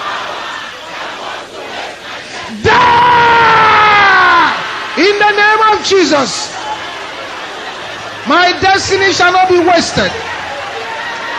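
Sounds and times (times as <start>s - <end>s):
crowd of many voices shouting a prayer in unison: 0.0s - 11.3s
speech: 5.9s - 6.6s, 8.2s - 10.3s.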